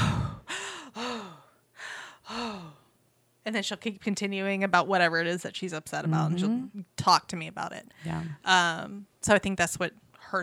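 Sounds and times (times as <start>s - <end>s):
woman imitating an upset child taking deep breaths: 0.0s - 3.0s
speech: 3.4s - 10.4s.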